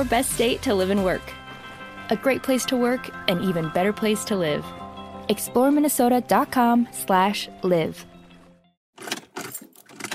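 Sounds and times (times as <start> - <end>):
speech: 0.0 - 1.4, 2.1 - 8.1
car engine cranking without catching: 9.0 - 10.1.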